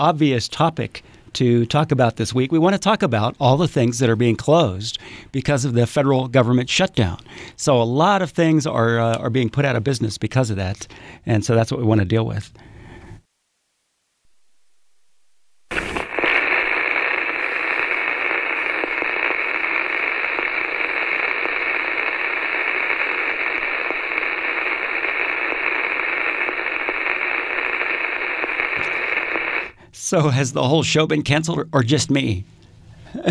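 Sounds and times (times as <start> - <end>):
speech: 0.0 - 12.7, 30.1 - 32.6
radio static hiss: 13.2 - 31.4.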